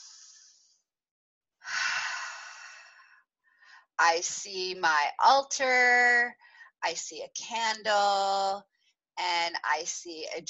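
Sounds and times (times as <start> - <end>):
faint breath: 1.6 - 4.0, 6.4 - 6.8
deep breath in during a grounding exercise: 1.7 - 4.0
speech: 4.0 - 10.4.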